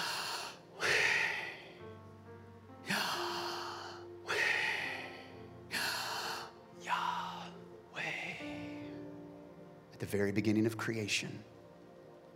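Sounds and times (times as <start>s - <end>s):
slow audible breathing in and out: 0.0s - 9.2s
soft sustained music: 0.0s - 12.3s
speech: 10.1s - 11.6s.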